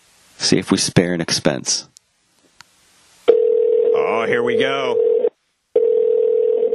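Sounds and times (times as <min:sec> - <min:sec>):
speech: 0:00.5 - 0:02.0, 0:04.2 - 0:05.0
phone line ringback tone calling a number in Anchorage Alaska: 0:03.3 - 0:06.7.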